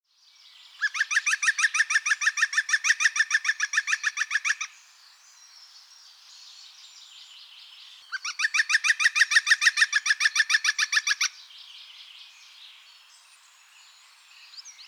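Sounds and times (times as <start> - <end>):
European green woodpecker giving laughing call: 0.8 - 4.7, 8.1 - 11.3.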